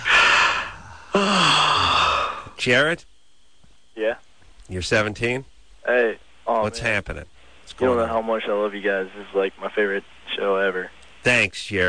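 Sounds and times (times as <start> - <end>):
person breathing in deeply during a guided relaxation exercise: 0.0 - 2.6
speech: 2.6 - 3.1, 4.0 - 11.8.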